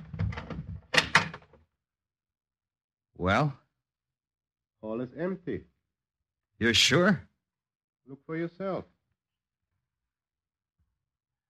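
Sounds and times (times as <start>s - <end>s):
door rattling open: 0.0s - 1.6s
speech: 3.2s - 3.6s, 4.8s - 5.7s, 6.6s - 7.3s, 8.1s - 8.9s.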